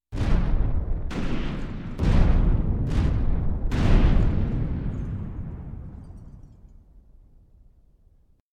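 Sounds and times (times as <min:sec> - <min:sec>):
giant monster footsteps: 0:00.1 - 0:06.6.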